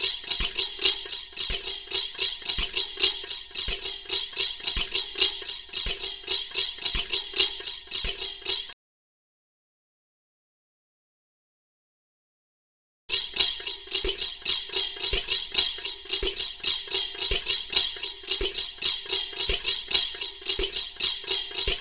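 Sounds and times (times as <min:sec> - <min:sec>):
folk tambourine rhythm: 0:00.0 - 0:08.8, 0:13.1 - 0:21.8.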